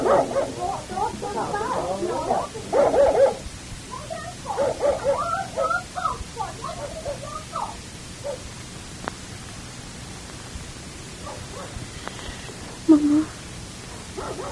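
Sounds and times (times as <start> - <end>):
dog barking and yipping: 0.0 - 3.4, 4.4 - 5.9, 6.6 - 8.5, 11.2 - 11.8, 14.1 - 14.5
people talking: 0.0 - 7.9, 12.0 - 13.3.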